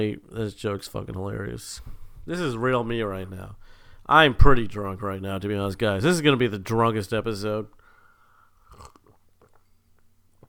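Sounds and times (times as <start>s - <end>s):
speech: 0.0s - 7.8s
person slurping a drink: 8.6s - 9.7s.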